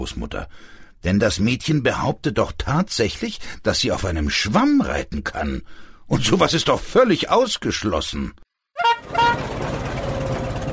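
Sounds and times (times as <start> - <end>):
speech: 0.0 - 8.4
old rattly car horn toots: 8.8 - 9.6
old rattly car engine rumble driving away from a farm: 9.1 - 10.7.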